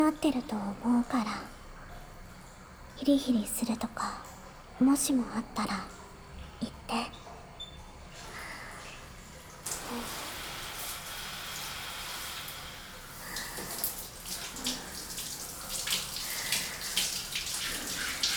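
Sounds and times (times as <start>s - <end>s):
speech: 0.1s - 1.5s, 3.0s - 6.0s, 6.6s - 7.2s
warm water running gently from a tap rinsing a back: 8.3s - 18.3s.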